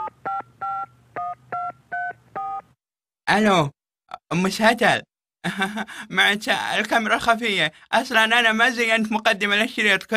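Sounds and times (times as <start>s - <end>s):
phone keypad dual-tone beeps as a number is dialed: 0.0s - 2.6s
speech: 3.3s - 10.1s.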